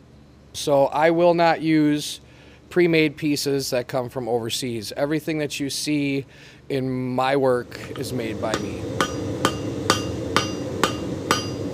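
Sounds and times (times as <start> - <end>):
speech: 0.5 - 9.2
blacksmith's hammer striking metal on an anvil forging a scroll: 8.5 - 11.7.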